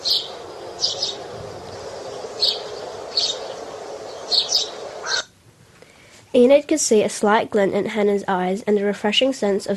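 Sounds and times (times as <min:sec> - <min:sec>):
birds calling in a misty forest: 0:00.0 - 0:05.4
steady outdoor hiss: 0:00.0 - 0:09.7
speech: 0:06.4 - 0:09.7.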